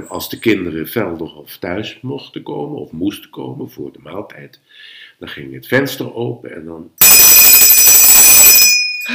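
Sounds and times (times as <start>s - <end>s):
speech: 0.0s - 7.0s
copper hand bell ringing: 7.0s - 9.1s.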